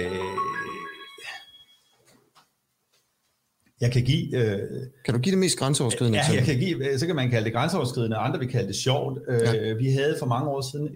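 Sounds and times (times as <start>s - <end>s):
mobile phone ringing with a bright tonal electronic chime: 0.0s - 2.0s
speech: 3.8s - 10.9s.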